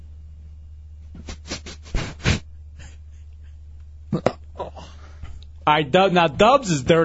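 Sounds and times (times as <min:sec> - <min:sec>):
low steady hum: 0:00.0 - 0:07.0
person sniffing a leather chair seat: 0:01.1 - 0:02.5
speech: 0:05.6 - 0:07.0.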